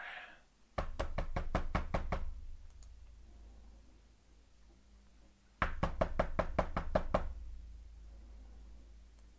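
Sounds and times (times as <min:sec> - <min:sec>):
quick loud knocking on the door of a house in the Logudoro region: 0:00.8 - 0:02.4, 0:05.6 - 0:07.4.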